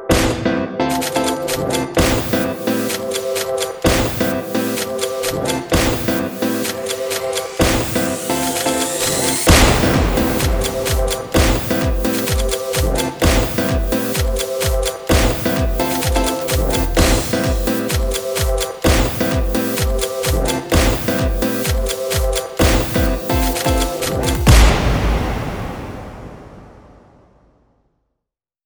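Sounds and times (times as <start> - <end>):
gunshots: 0.1 - 17.7, 22.6 - 27.2
rhythmic short background music for quick-cut videos: 0.1 - 26.8.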